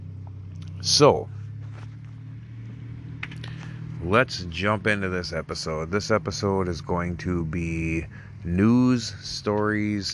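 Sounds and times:
car driving by: 0.0s - 10.1s
speech: 0.8s - 1.4s, 4.0s - 10.1s.

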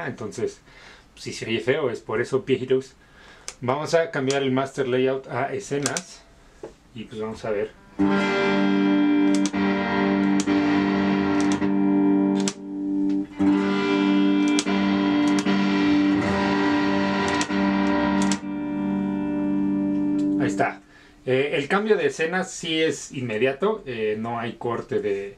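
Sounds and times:
speech: 0.0s - 8.9s, 21.6s - 25.3s
heavily distorted electric guitar chords through FRFR speaker: 7.7s - 21.1s.

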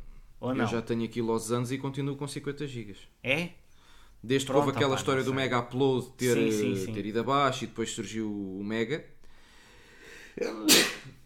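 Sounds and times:
speech: 0.4s - 3.6s, 4.2s - 9.2s, 10.4s - 11.2s
person sneezing: 10.4s - 11.2s.

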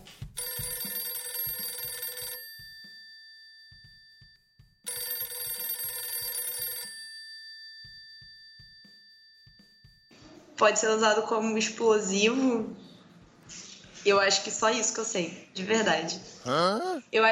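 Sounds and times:
telephone ringback tone on an outgoing call: 0.4s - 4.0s, 4.9s - 8.2s
speech: 10.6s - 12.8s, 14.1s - 17.3s.

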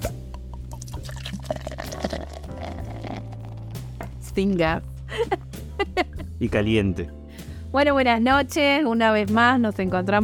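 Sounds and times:
beer gurgling and splashing into a glass: 0.3s - 4.1s
speech: 4.4s - 5.4s, 6.4s - 10.2s.

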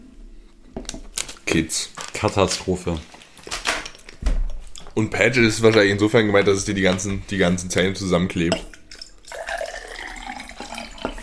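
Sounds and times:
speech: 1.5s - 3.1s, 5.0s - 8.7s
water running from a tap: 9.0s - 11.2s.

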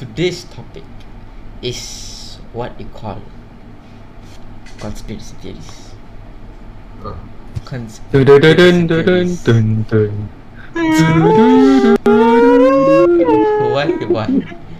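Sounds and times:
speech: 0.0s - 0.9s, 1.6s - 3.4s, 4.8s - 5.8s, 7.0s - 14.6s
voice imitating an eerie spooky theme tune: 10.6s - 14.6s.

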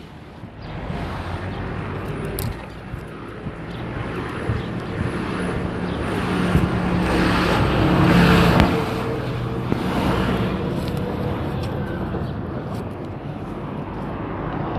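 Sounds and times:
continuous traffic rumble: 0.0s - 14.7s
someone walking in the middle of a road: 0.0s - 14.7s
car engine driving around the walker: 0.6s - 12.2s.

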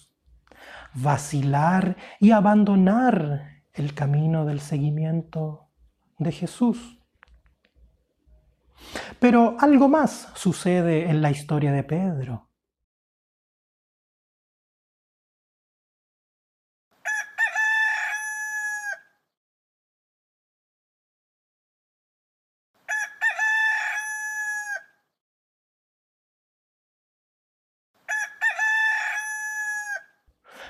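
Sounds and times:
speech: 0.9s - 5.6s, 6.2s - 7.0s, 8.8s - 12.5s
rooster crowing: 17.0s - 19.2s, 22.8s - 25.0s, 28.0s - 30.2s.

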